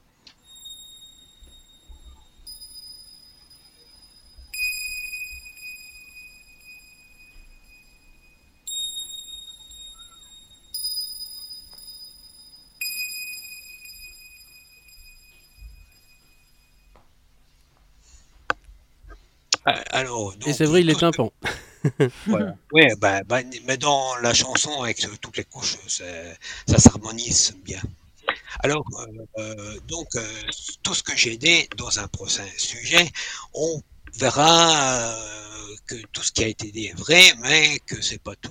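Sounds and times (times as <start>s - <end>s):
high synthetic wavetable synthesizer bell tone with reverb and delay: 0.4s - 17.0s
speech: 19.7s - 28.0s, 28.6s - 38.4s
laughter: 21.4s - 22.4s.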